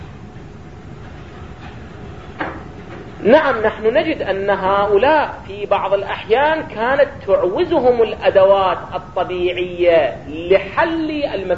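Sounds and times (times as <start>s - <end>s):
door pushed shut with a soft thud: 2.4s - 3.1s
speech: 3.2s - 11.5s.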